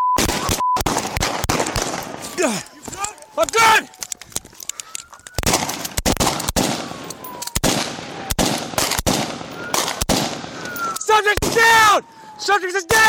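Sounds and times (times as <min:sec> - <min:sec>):
exchange of gunfire: 0:00.2 - 0:03.8, 0:05.4 - 0:11.9
speech: 0:02.4 - 0:04.0, 0:11.2 - 0:13.0
faint high whistling tones: 0:04.6 - 0:05.4, 0:09.5 - 0:09.8, 0:10.6 - 0:11.1.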